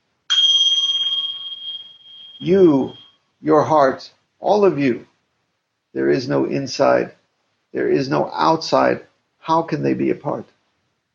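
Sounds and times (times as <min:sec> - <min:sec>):
single bell struck and ringing: 0:00.3 - 0:03.1
speech: 0:02.4 - 0:05.1, 0:06.0 - 0:10.6.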